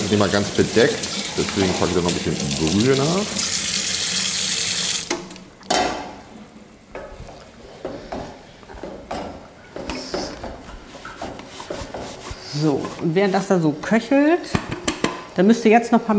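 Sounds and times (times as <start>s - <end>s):
water running from a kitchen tap into a sink: 0.0s - 5.4s
speech: 0.1s - 3.5s, 12.6s - 14.6s, 15.4s - 16.1s.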